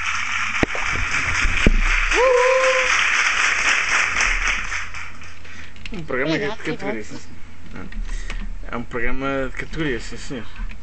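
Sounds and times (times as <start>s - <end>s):
audience applause at a live variety show with folk music: 0.0s - 5.4s
speech: 6.0s - 10.7s.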